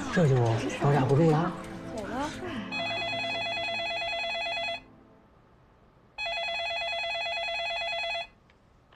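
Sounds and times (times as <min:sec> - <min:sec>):
speech: 0:00.1 - 0:01.7
telephone ringing with an electronic trill: 0:02.7 - 0:04.9, 0:06.2 - 0:08.4.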